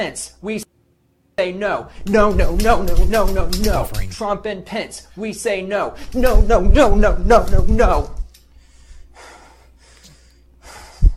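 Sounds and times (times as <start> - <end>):
speech: 0.0 - 0.7, 1.4 - 8.2
heavy out-of-breath breathing after loud protest chanting: 8.5 - 11.1.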